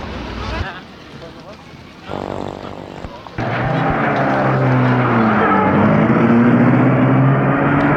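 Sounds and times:
car engine starting and driving away from outside a railway station: 0:02.1 - 0:07.9.

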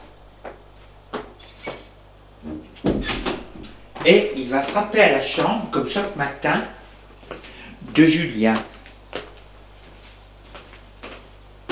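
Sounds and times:
door being opened to let a visitor in: 0:01.4 - 0:03.8
speech: 0:04.0 - 0:06.8, 0:08.0 - 0:08.7.

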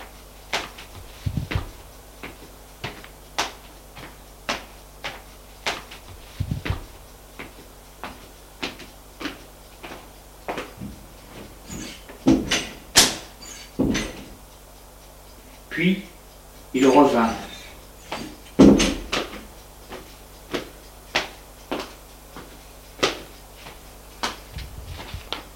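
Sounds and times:
sharp evenly spaced knocks or steps: 0:00.6 - 0:01.8, 0:11.7 - 0:14.4, 0:18.1 - 0:21.3
heavy thuds: 0:00.6 - 0:03.0, 0:05.7 - 0:07.6, 0:08.7 - 0:14.4, 0:24.2 - 0:25.5
door being handled and opened: 0:11.7 - 0:14.3
speech: 0:15.8 - 0:16.1, 0:16.8 - 0:17.4.

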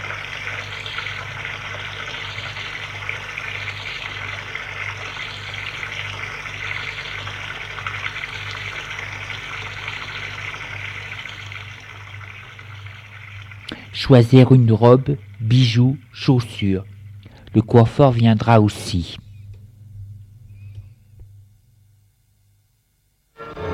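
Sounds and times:
shower water spraying: 0:00.0 - 0:14.0
speech: 0:14.0 - 0:16.9, 0:17.5 - 0:19.2.

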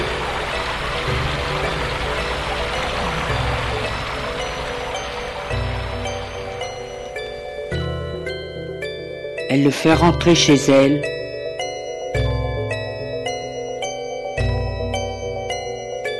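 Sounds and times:
heavy rain pouring: 0:00.0 - 0:07.5
faint sustained musical tones: 0:00.0 - 0:16.1
speech: 0:09.5 - 0:11.1.

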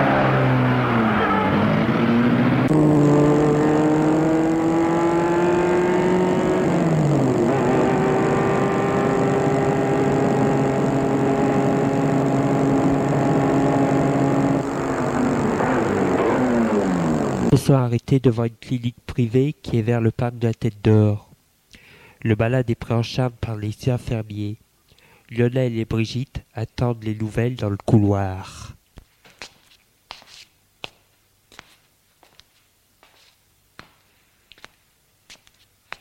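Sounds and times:
car engine revving and accelerating through gear changes: 0:00.0 - 0:17.6
speech: 0:17.7 - 0:21.3, 0:22.2 - 0:24.6, 0:25.3 - 0:28.8.

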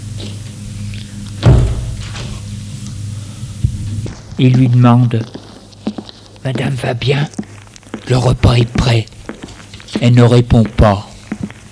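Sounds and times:
steady low hum: 0:00.0 - 0:05.2
apartment door opening with a clunk: 0:01.4 - 0:02.4
speech: 0:04.4 - 0:05.4, 0:06.4 - 0:07.5, 0:08.1 - 0:09.1, 0:10.0 - 0:11.1.

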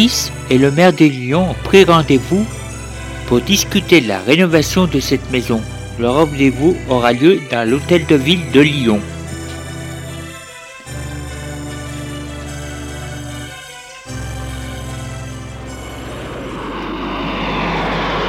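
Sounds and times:
speech: 0:00.0 - 0:02.6, 0:03.3 - 0:09.1
small propeller airplane flying: 0:00.0 - 0:18.2.

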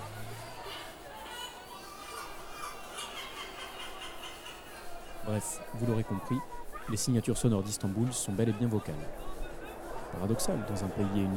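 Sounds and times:
chorus of seagulls calling: 0:00.0 - 0:06.4
busy bustling noise: 0:00.0 - 0:11.3
laughter: 0:00.0 - 0:11.3
speech: 0:05.3 - 0:09.4, 0:10.1 - 0:11.3.

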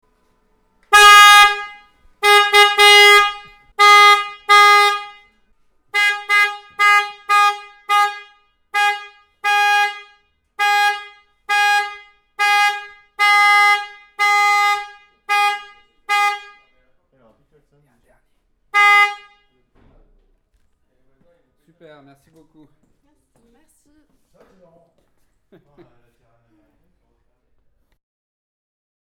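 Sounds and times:
Harley Davidson motorcycle klaxon: 0:00.9 - 0:16.9, 0:18.7 - 0:19.7.

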